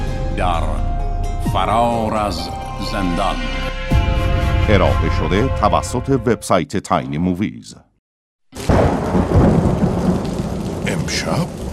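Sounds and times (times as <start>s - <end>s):
speech: 0.4s - 0.9s, 1.5s - 7.9s, 11.1s - 11.6s
heavy rain: 8.6s - 11.7s
thunder rumbling: 8.6s - 11.7s.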